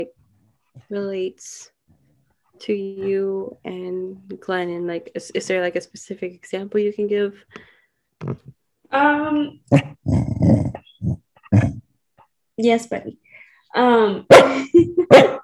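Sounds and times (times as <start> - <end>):
speech: 0.8 - 1.8, 2.6 - 10.2, 12.6 - 13.2, 13.8 - 15.4
dog growling low: 9.7 - 11.9
dog barking in short bursts: 14.3 - 15.4.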